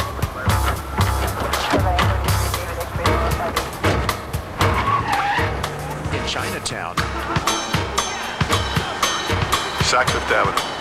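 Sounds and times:
tires skidding as an unmarked police car drives away: 0:00.0 - 0:10.7
unmarked police car engine rushing: 0:00.0 - 0:10.7
speech: 0:06.7 - 0:07.4, 0:09.9 - 0:10.7.

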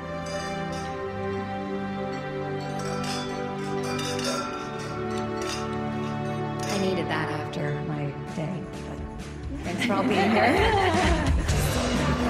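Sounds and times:
glasses clinking in a toast: 0:00.0 - 0:07.3
sustained music: 0:00.0 - 0:12.2
speech: 0:06.8 - 0:09.0, 0:09.6 - 0:12.0
laughter: 0:09.5 - 0:12.2.

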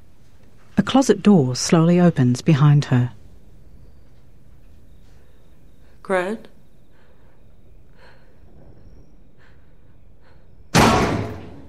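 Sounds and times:
speech: 0:00.9 - 0:03.2, 0:06.1 - 0:06.5
machine lid slamming shut: 0:10.7 - 0:11.6.

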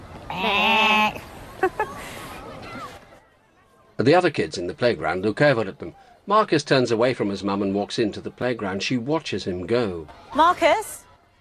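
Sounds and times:
person imitating sheep bleating: 0:00.3 - 0:01.2
speech: 0:04.0 - 0:11.0.

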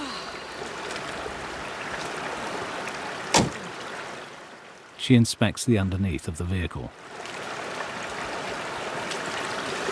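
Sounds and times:
rushing mountain river water: 0:00.0 - 0:09.9
Land Rover car door clunk: 0:03.3 - 0:03.6
speech: 0:05.0 - 0:07.2.

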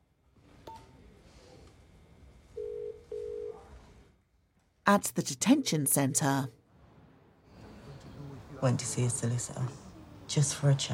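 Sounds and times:
mobile phone call ringing tone buzzing: 0:02.6 - 0:03.6
speech: 0:04.9 - 0:06.6, 0:08.6 - 0:10.9.

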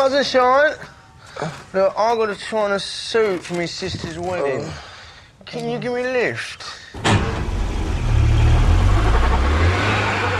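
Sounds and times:
speech: 0:00.0 - 0:07.4
car engine running: 0:07.0 - 0:10.3.

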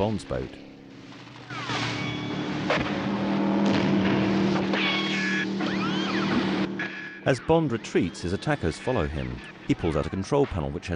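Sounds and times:
speech: 0:00.0 - 0:00.7, 0:07.3 - 0:10.9
speedboat engine racing on water: 0:00.0 - 0:10.9
brief whining tones: 0:01.4 - 0:03.1, 0:04.7 - 0:07.3.

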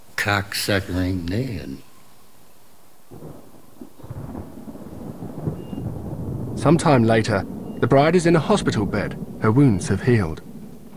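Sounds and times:
heavy rain pouring down a window outside a hospital room: 0:00.0 - 0:10.9
low thunder rumbling: 0:00.0 - 0:10.9
speech: 0:00.2 - 0:01.9, 0:06.6 - 0:10.5.

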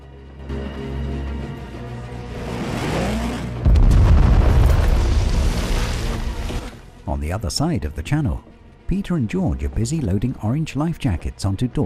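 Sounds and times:
large explosion boom: 0:03.6 - 0:06.7
speech: 0:07.2 - 0:11.8.

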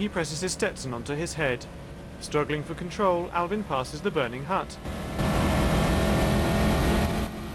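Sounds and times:
speech: 0:00.0 - 0:05.0
riding lawnmower engine accelerating on a road: 0:04.8 - 0:07.5.

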